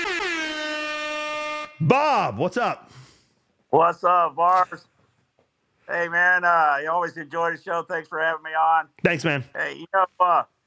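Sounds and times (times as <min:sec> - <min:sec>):
loud sustained air horn blast: 0:00.0 - 0:01.9
speech: 0:01.8 - 0:03.0, 0:03.7 - 0:04.9, 0:05.9 - 0:10.5.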